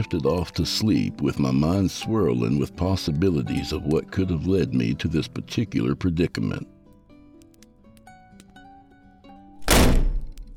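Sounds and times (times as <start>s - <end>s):
speech: 0.0s - 6.8s
door flung open with a heavy thunk: 9.6s - 10.5s.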